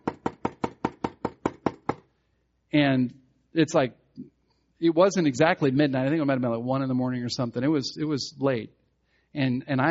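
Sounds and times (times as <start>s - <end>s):
firm knocks on a door: 0.0s - 2.0s
speech: 2.7s - 9.8s.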